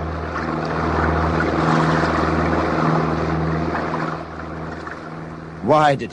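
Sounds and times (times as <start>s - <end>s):
powerful motorboat engine roaring: 0.0s - 6.1s
rush of churning water from speeding motorboat: 0.0s - 6.1s.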